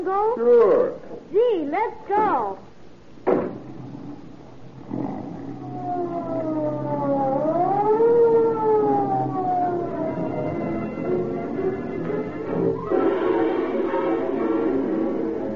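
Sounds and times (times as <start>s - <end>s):
speech: 0.0s - 2.7s
sharp thud: 3.2s - 3.7s
police car siren wailing: 4.9s - 15.5s.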